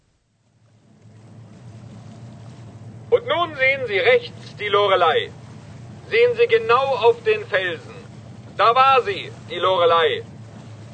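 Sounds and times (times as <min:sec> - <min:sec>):
ship engine drone moving through water: 0:00.0 - 0:10.9
water wash: 0:00.0 - 0:10.9
speech: 0:03.3 - 0:05.4, 0:06.1 - 0:08.0, 0:08.6 - 0:10.3.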